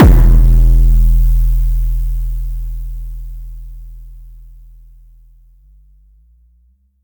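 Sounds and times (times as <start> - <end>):
kick drum boom: 0.0 - 4.6.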